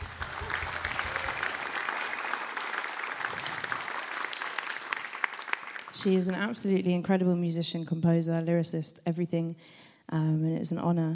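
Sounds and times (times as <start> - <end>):
large audience applause: 0.0 - 6.4
speech: 6.0 - 11.1.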